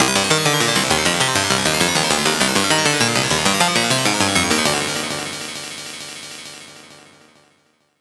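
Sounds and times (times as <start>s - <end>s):
glitchy arpeggio fill: 0.0s - 5.4s.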